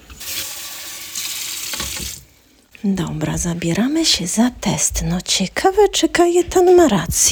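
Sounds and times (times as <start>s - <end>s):
cold water running from a kitchen tap: 0.0s - 2.4s
speech: 2.8s - 7.3s.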